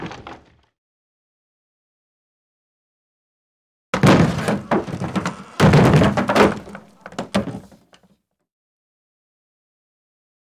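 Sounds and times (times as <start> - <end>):
medium wood impact: 4.0 - 7.9.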